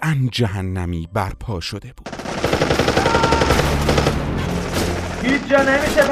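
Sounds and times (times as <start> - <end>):
speech: 0.1 - 4.2, 5.2 - 6.0
machine-gun fire on a battlefield: 2.1 - 6.0.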